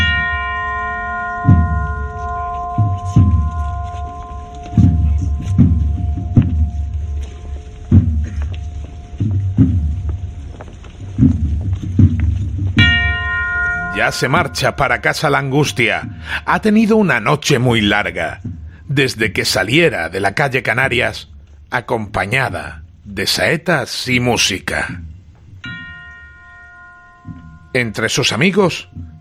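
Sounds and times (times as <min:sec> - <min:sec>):
single bell ringing: 0:00.0 - 0:07.8, 0:12.8 - 0:18.0, 0:25.6 - 0:29.1
steady low thuds: 0:00.0 - 0:19.7, 0:25.0 - 0:29.1
cold strong wind: 0:00.0 - 0:29.1
speech: 0:14.0 - 0:25.0, 0:27.7 - 0:29.1.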